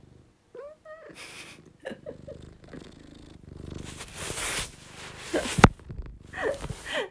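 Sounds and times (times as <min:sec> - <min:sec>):
cat purring: 0:00.0 - 0:07.0
rustling and handling noises: 0:03.6 - 0:07.1.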